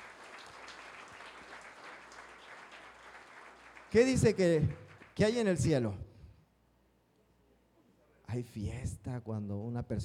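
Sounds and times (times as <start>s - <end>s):
congregation applauding: 0.0s - 5.8s
speech: 3.9s - 6.1s, 8.4s - 10.0s.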